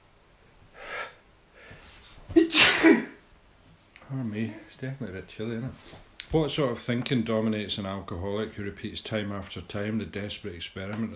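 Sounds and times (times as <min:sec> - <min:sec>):
sharp rising inhales: 0:00.7 - 0:02.1
loud explosive sneeze: 0:02.3 - 0:03.2
speech: 0:04.8 - 0:11.1.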